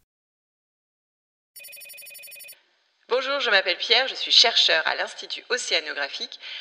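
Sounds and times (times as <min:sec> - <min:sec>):
telephone bell ringing for an incoming call: 0:01.6 - 0:02.6
speech: 0:03.2 - 0:06.5.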